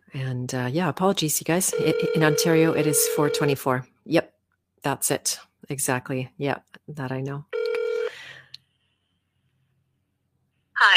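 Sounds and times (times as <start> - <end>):
speech: 0.4 - 7.6, 10.8 - 10.9
electronic telephone dialing tone: 1.7 - 3.6, 7.6 - 8.1.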